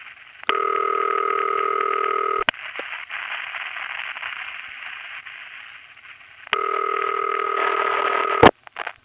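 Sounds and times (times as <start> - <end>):
telephone line noise: 0.0 - 9.0
standard city telephone ringback tone from Forest Hills, Queens: 0.5 - 2.5, 6.6 - 8.5.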